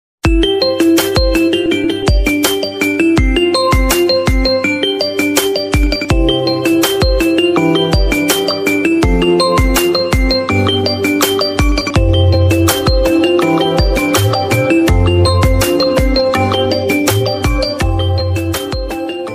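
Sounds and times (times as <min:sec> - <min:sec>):
Xiaomi Mi tabla remix ringtone: 0:00.4 - 0:19.3.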